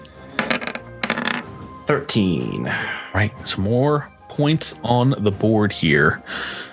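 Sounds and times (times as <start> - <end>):
d10 die rattling and tumbling across a surface during a tabletop game: 0.4 - 1.6
speech: 1.9 - 6.6.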